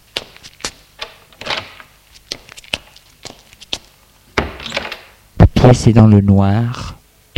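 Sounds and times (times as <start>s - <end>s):
door being opened with latch clicks and a thump: 1.0s - 1.9s, 4.4s - 5.2s
speech: 5.6s - 6.9s.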